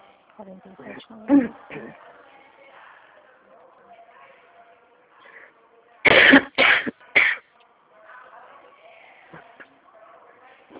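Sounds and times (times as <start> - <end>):
faint voices: 0.0 - 10.7
quiet murmuring: 0.8 - 2.1
woman coughing harshly: 1.3 - 2.0, 6.1 - 7.4.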